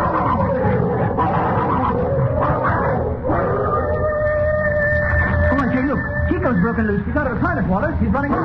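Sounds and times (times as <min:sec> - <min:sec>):
dogs fighting, snarling and growling: 0:00.0 - 0:06.0
speech: 0:06.8 - 0:08.4.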